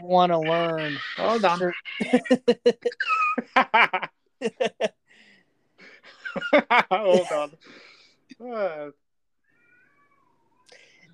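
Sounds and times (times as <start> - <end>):
speech: 0.1 - 5.0, 6.3 - 9.0
cat meowing: 0.4 - 2.3, 9.5 - 10.7
laughter: 0.6 - 5.0, 5.8 - 7.6.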